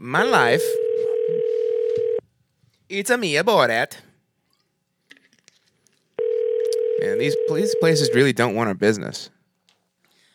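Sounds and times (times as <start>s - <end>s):
speech: 0.0s - 1.6s, 2.9s - 4.1s, 7.0s - 9.4s
loud steady telephone tone: 0.5s - 2.2s, 6.2s - 8.2s.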